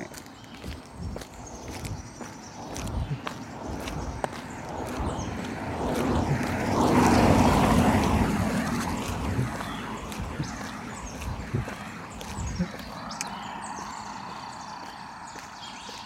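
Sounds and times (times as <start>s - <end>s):
footsteps crunching outdoors: 0.0s - 16.0s
car engine rumble and tire noise passing by: 1.4s - 15.6s.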